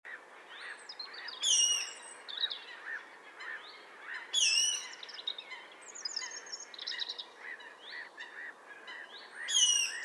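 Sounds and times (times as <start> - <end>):
other birds calling: 0.1 - 10.0
Eurasian nuthatch Sitta europaea calling: 0.6 - 7.2, 8.9 - 10.0.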